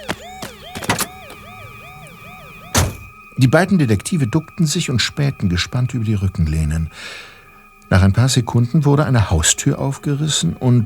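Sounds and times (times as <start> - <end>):
Honda motorcycle alarm set off by shaking the handlebars, wailing: 0.0 - 5.3
sharp knocks: 2.8 - 3.2
speech: 3.4 - 7.3, 7.9 - 10.8.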